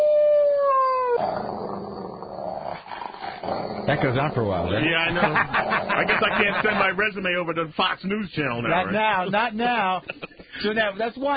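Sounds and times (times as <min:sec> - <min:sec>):
dog howling: 0:00.0 - 0:03.9
speech: 0:03.9 - 0:11.3
laughter: 0:04.8 - 0:07.2, 0:08.8 - 0:10.8.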